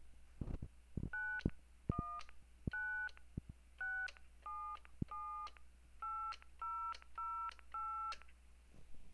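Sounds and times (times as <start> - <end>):
DTMF touch-tone dialing tones: 1.1 - 3.2, 3.8 - 8.2.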